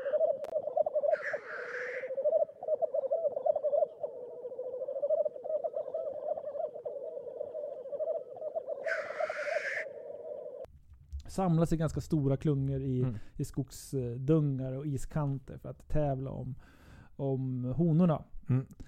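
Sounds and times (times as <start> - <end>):
black grouse at a lek, rolling bubbling coo: 0.0 - 10.7
speech: 11.4 - 18.8.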